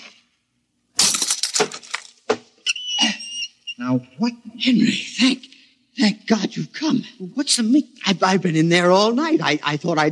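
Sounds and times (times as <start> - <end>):
lock being smashed open: 1.0 - 2.4
speech: 3.9 - 10.0.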